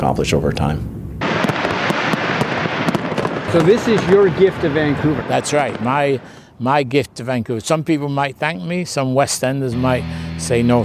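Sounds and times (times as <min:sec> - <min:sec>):
speech: 0:00.0 - 0:01.0, 0:03.5 - 0:10.8
constant loud rumble: 0:00.0 - 0:10.8
fireworks exploding in Vancouver: 0:01.2 - 0:06.4.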